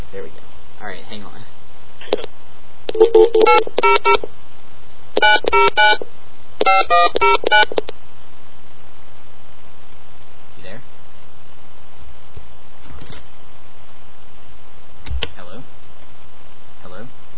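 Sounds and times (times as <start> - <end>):
speech: 0.1 - 4.4, 5.2 - 8.0, 16.9 - 17.2
telephone keypad dialing tones: 2.9 - 4.2, 5.2 - 6.0, 6.6 - 7.8.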